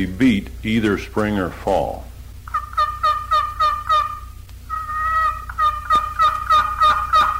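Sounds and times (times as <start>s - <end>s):
speech: 0.0s - 2.1s
wooden box call scratching out hen turkey yelps: 2.5s - 7.3s.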